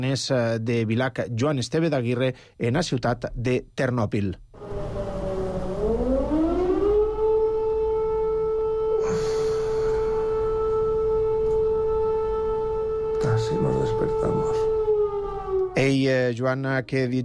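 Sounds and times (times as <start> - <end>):
speech: 0.0 - 4.4, 16.0 - 17.2
air raid warning siren wailing: 4.5 - 17.2.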